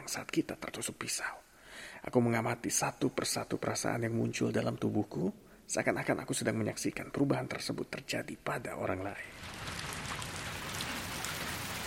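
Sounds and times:
speech: 0.1 - 9.9
heavy rain pouring and washing toward a drain: 9.3 - 11.8.

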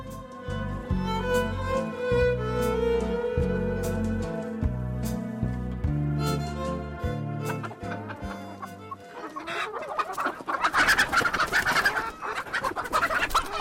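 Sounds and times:
tonal music: 0.0 - 9.9
hen cackling after laying a large egg: 7.4 - 13.6.

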